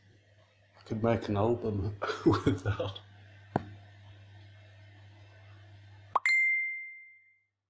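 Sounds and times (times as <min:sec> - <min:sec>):
low steady hum in a room: 0:00.0 - 0:07.0
speech: 0:00.9 - 0:03.7
laughter: 0:02.0 - 0:03.0
knock: 0:03.5 - 0:03.7.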